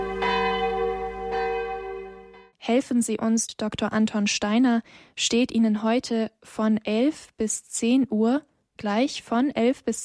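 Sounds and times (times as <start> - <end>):
church bells ringing: 0.0 - 2.5
speech: 2.6 - 10.0.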